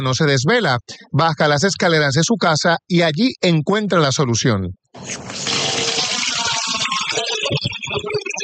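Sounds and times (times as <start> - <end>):
speech: 0.0 - 5.6
fresh drinkable water flowing from a spring at the foot of house stairs: 5.0 - 7.4.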